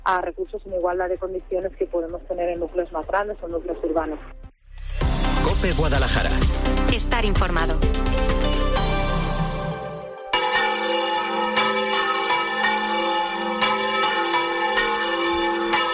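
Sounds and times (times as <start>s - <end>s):
speech: 0.1s - 4.5s, 5.4s - 8.9s
large cathedral church bells pealing from tower: 8.4s - 15.9s.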